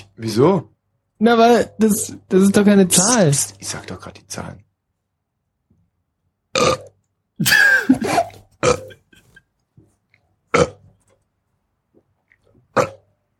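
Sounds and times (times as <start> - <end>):
speech: 0.2 - 4.7, 7.4 - 7.6
person burping into a telephone line: 6.5 - 9.4, 10.5 - 10.8, 12.7 - 13.1.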